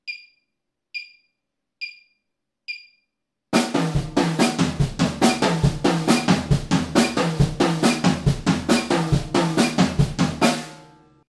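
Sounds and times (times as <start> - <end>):
drum break moving across toms: 3.6 - 10.8.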